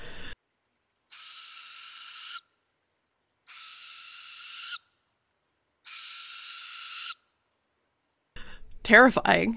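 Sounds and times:
barred owl giving raspy screeching calls: 1.1 - 2.6, 3.5 - 5.0, 5.8 - 7.4
speech: 8.9 - 9.5.

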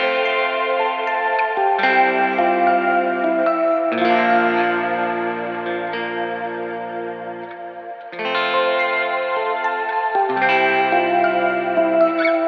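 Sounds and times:
layered keyboard chords: 0.0 - 12.4.

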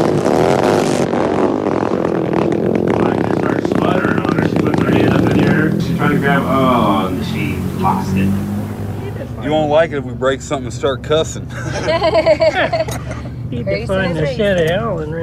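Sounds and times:
'79 GT Hunter and Shift motorcycle engine starting and revving: 0.0 - 11.4
speech: 9.5 - 15.2
laughter: 11.4 - 13.4.

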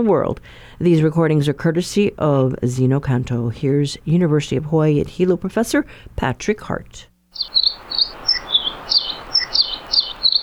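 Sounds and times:
speech: 0.0 - 7.9
soft hiss: 0.0 - 10.4
Nihoa finch singing bright high chirps and warbled notes: 7.4 - 10.4.

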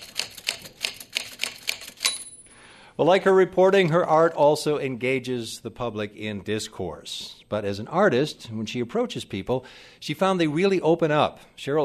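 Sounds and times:
typewriter keys typing out dictated letters: 0.0 - 2.3
speech: 3.0 - 11.8.

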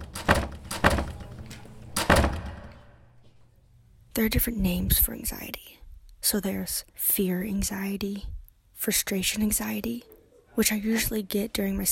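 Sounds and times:
classroom door slamming shut: 0.0 - 3.0
speech: 4.2 - 11.9.

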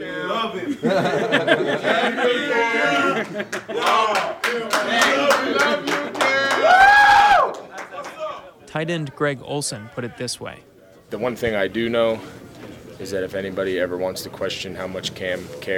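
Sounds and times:
speech: 0.0 - 2.5, 8.8 - 12.4, 13.0 - 15.7
football players laughing: 0.2 - 6.3
football players cheering and whooping in a locker room: 1.8 - 8.2
loud rising shout: 2.1 - 8.5.

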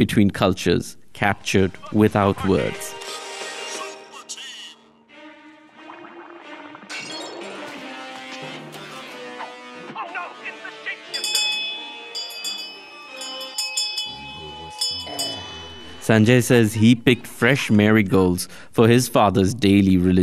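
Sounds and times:
speech: 0.0 - 3.0, 16.1 - 20.2
small brass hand bell ringing: 11.2 - 16.5.

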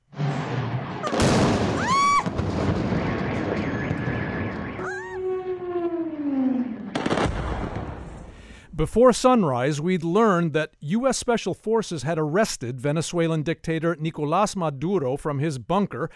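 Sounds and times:
loud explosions in Caracas at night: 0.0 - 8.7
rising and falling whistling tones: 3.1 - 5.4
speech: 8.8 - 16.1.

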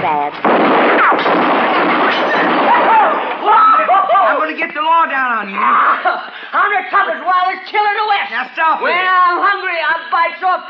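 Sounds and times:
speech: 0.0 - 3.6, 4.2 - 10.6
gunfire from guns being shot off by Texas men: 0.3 - 3.9.

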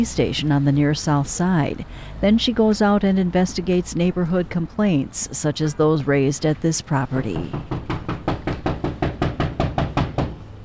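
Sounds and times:
speech: 0.0 - 8.0
firm knocks on a property front door: 7.4 - 10.4.

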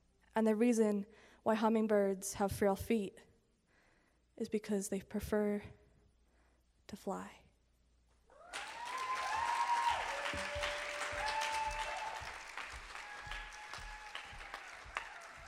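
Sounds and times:
speech: 0.4 - 3.3, 4.4 - 5.8, 6.9 - 7.4
whoops and cheers: 8.3 - 15.4
large crowd applauding: 8.4 - 15.4.

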